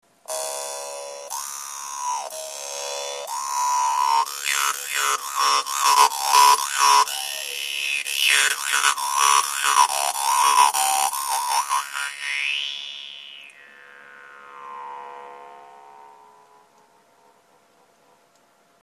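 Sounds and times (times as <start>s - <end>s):
dan moi jaw harp played with double tonguing: 0.3s - 17.0s.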